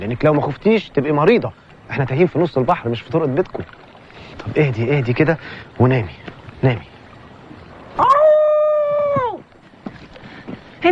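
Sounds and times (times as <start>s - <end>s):
speech: 0.0s - 6.9s
wolf howling: 8.0s - 9.4s.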